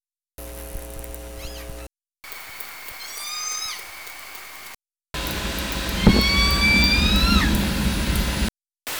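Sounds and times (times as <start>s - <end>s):
hissing hum: 0.4s - 8.5s
orca calls: 5.3s - 8.5s.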